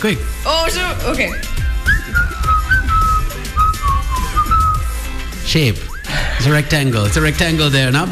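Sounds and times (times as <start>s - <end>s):
speech: 0.0s - 2.3s, 5.5s - 8.1s
person whistling a wavering sliding tune: 1.1s - 5.1s, 5.8s - 6.2s.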